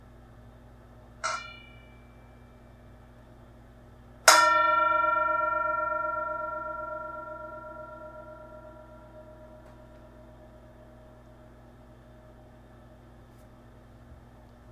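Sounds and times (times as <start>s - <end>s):
meditation bell struck: 1.2s - 2.7s, 4.3s - 11.8s.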